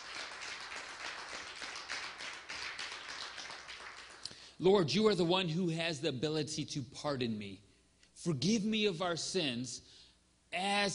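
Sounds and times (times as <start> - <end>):
church audience clapping in praise: 0.0 - 4.4
speech: 4.6 - 9.9, 10.5 - 10.9.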